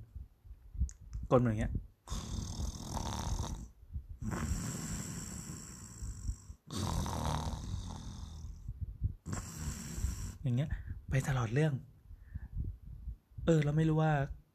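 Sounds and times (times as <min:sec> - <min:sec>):
speech: 0:01.3 - 0:02.2, 0:10.5 - 0:11.9, 0:13.5 - 0:14.4
person imitating someone snoring in a cinema seat: 0:02.1 - 0:10.4.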